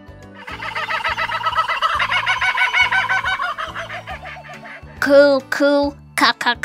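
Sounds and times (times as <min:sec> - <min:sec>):
kookaburra laughing call: 0:00.4 - 0:05.0
steady low rhythmic backing: 0:00.4 - 0:05.7
speech: 0:05.0 - 0:06.6.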